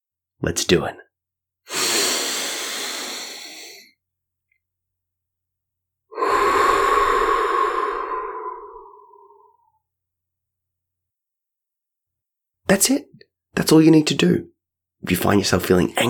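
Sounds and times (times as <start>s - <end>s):
speech: 0.4s - 1.0s, 12.7s - 16.0s
big slow breath in through the nose: 1.7s - 3.9s, 6.1s - 9.7s.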